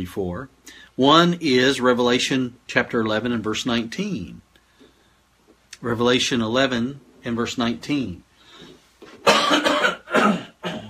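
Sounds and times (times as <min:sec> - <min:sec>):
speech: 0:00.0 - 0:04.4, 0:05.8 - 0:09.5
rough loud coughing: 0:09.2 - 0:10.8
throat clearing: 0:09.2 - 0:10.8.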